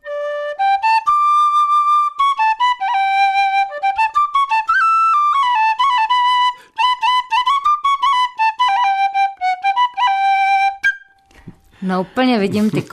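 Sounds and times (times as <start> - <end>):
tin whistle playing a lively shepherd-style folk melody: 0.0 - 11.4
speech: 11.9 - 12.9.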